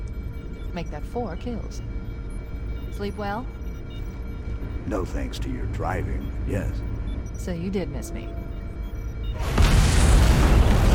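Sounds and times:
speech: 0:00.7 - 0:02.0, 0:02.9 - 0:08.4
loud explosion aboard a cruiser warship: 0:09.4 - 0:10.9.

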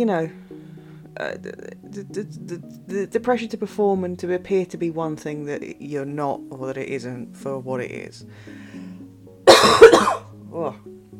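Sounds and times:
speech: 0:00.0 - 0:00.4, 0:01.2 - 0:08.7, 0:09.6 - 0:10.9
throat clearing: 0:09.5 - 0:10.2
harsh cough: 0:09.5 - 0:10.3.

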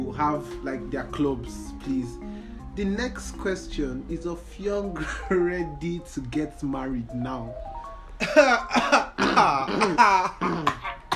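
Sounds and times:
speech: 0:00.2 - 0:10.8
man coughing with loud rough throaty bursts: 0:08.2 - 0:11.1.

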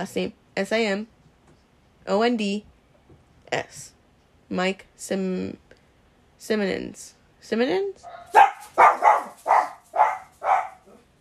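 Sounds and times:
speech: 0:00.0 - 0:01.1, 0:02.0 - 0:02.7, 0:03.5 - 0:05.6, 0:06.4 - 0:09.1
dogs barking: 0:08.0 - 0:11.1.

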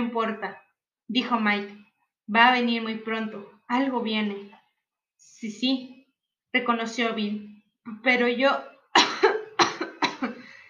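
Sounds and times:
speech: 0:00.0 - 0:04.6, 0:05.2 - 0:08.7, 0:10.2 - 0:10.4
dry hacking cough: 0:09.0 - 0:10.4.

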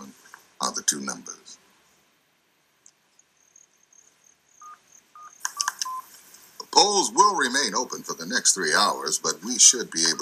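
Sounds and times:
telephone keypad DTMF tones as a number and security code are keyed in: 0:04.6 - 0:06.0
speech: 0:07.1 - 0:10.2.

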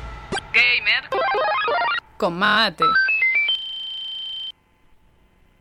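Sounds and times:
instrumental video game soundtrack with deep bass, chords and percussion: 0:00.3 - 0:02.0
quick electronic beeps: 0:00.3 - 0:02.0, 0:02.8 - 0:04.5
speech: 0:02.3 - 0:03.0.

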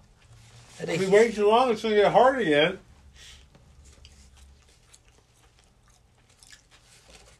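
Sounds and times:
speech: 0:00.8 - 0:03.3
chewing food with crunchy bites: 0:03.4 - 0:07.3.

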